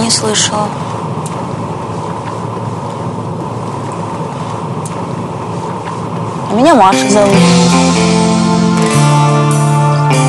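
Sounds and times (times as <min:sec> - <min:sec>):
Bentley car engine running: 0:00.0 - 0:10.2
speech: 0:00.1 - 0:01.0, 0:06.5 - 0:08.2
faint mechanical ticks: 0:01.2 - 0:03.0, 0:03.6 - 0:06.3.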